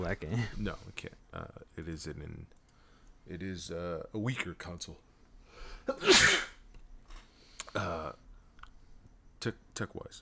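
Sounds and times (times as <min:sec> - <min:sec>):
speech: 0:00.0 - 0:02.6, 0:03.2 - 0:06.5, 0:07.7 - 0:08.2, 0:09.4 - 0:10.2
person sneezing: 0:05.9 - 0:06.6.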